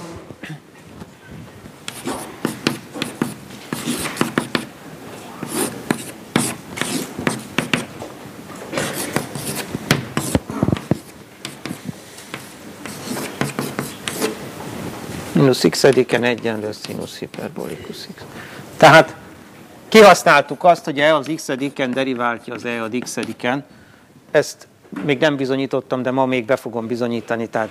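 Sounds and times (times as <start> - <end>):
scratchy writing strokes of a derivative equation during a math lesson: 1.9 - 4.7, 5.4 - 7.9, 8.7 - 14.4, 15.8 - 17.7
speech: 15.5 - 19.2, 19.9 - 27.6.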